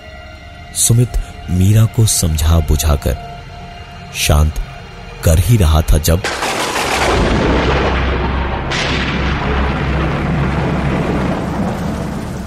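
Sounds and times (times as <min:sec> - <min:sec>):
speech: 0:00.7 - 0:03.3, 0:04.1 - 0:06.6
deep rolling thunder: 0:06.2 - 0:12.4
heavy rain downpour: 0:06.2 - 0:12.4.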